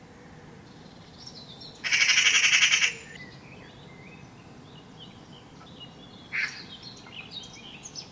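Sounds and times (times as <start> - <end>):
Eurasian magpie chattering: 1.8 - 3.2.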